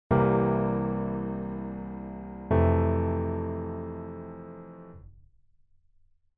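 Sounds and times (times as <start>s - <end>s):
C7 and Fmaj7 chords: 0.1s - 5.0s.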